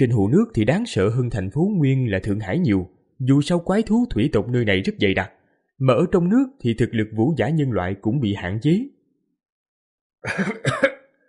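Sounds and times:
speech: 0.0 - 9.0, 10.2 - 10.9
short rasping dry coughs: 10.2 - 11.2.

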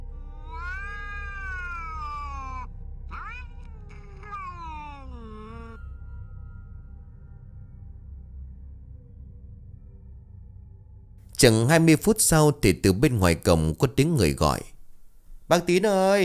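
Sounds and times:
cat wailing on a rooftop: 0.0 - 5.8
steady low rumble: 2.2 - 4.7, 5.8 - 11.2
speech: 11.4 - 14.7, 15.5 - 16.2.

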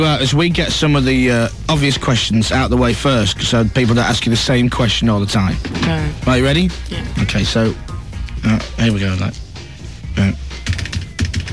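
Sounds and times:
speech: 0.0 - 9.4, 10.2 - 10.5
typing on a computer keyboard: 10.6 - 11.5.

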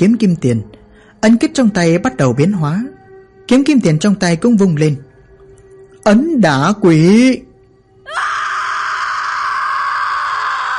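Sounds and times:
speech: 0.0 - 5.1, 6.0 - 7.5
piercing sustained scream filling a room: 8.0 - 10.7.

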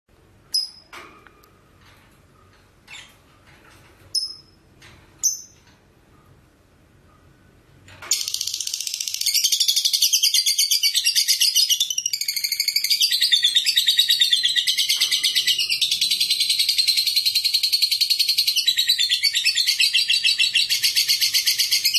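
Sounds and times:
lovebird sharp high chirps: 0.5 - 0.9, 4.1 - 4.6, 5.2 - 5.6, 8.1 - 21.9.

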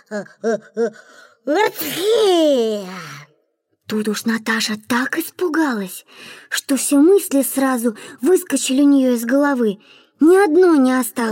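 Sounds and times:
speech: 0.1 - 3.3, 3.9 - 11.3
loud sharp sneeze from a character in an audio fairy tale: 1.6 - 2.4.

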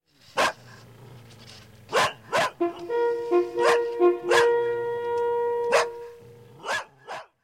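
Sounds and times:
dogs barking during a hunt in the hills: 0.4 - 0.8, 1.9 - 2.8, 3.5 - 4.9, 5.6 - 7.4
drawn-out horn-like tone: 2.4 - 6.7.

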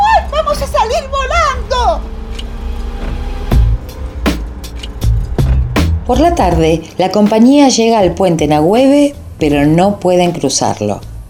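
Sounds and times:
car turning onto a gravel road: 0.3 - 6.3
speech: 6.1 - 11.1.

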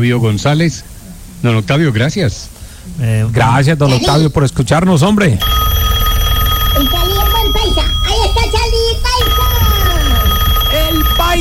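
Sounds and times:
speech: 0.0 - 5.6
telephone ringing: 5.4 - 11.3
several people talking loudly: 6.8 - 11.3.

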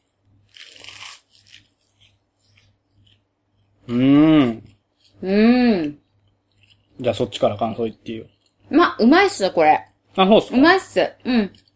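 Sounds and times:
crunchy bite into cheese toast with Vegemite: 0.0 - 3.2
speech: 3.9 - 6.0, 7.0 - 11.6.

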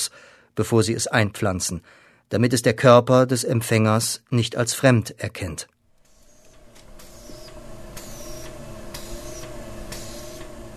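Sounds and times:
speech: 0.6 - 5.8
laboratory pump in a cell lab pushing liquid through long tubes: 5.9 - 10.7.

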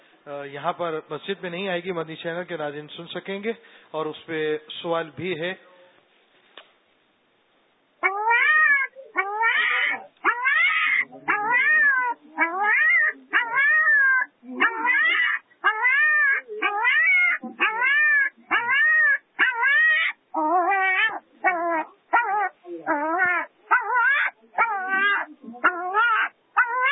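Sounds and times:
speech: 0.2 - 5.7
puppy trapped behind its mother whimpering in pain: 8.0 - 26.9.

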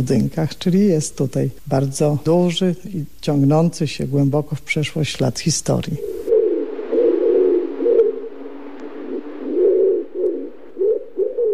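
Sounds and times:
speech: 0.0 - 6.2
pigeons cooing in historic university buildings: 5.8 - 11.5.

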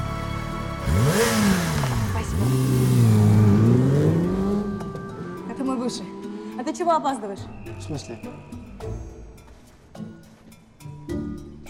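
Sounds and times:
sport motorcycle engine revving as it pulls in: 0.7 - 7.0
speech: 6.8 - 8.6.

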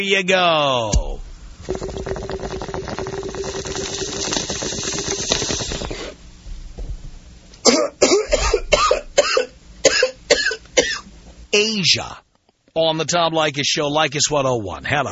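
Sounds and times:
speech: 0.0 - 2.0, 11.6 - 12.2, 12.8 - 15.0
steady hissing: 0.9 - 11.6
person coughing after a bong hit: 7.6 - 11.1.

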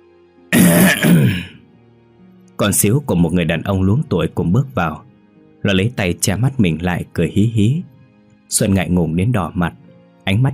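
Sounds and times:
throat clearing: 0.6 - 1.6
speech: 2.6 - 7.9, 8.5 - 10.5.

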